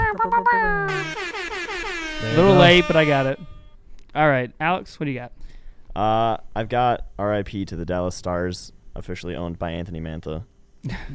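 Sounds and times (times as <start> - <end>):
air horn blasts: 0.9 - 3.8
speech: 2.2 - 3.6, 4.2 - 5.4, 6.0 - 11.1.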